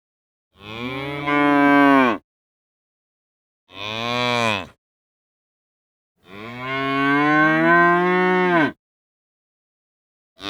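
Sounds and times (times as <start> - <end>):
cow lowing: 0.6 - 2.2, 3.7 - 4.8, 6.3 - 8.8.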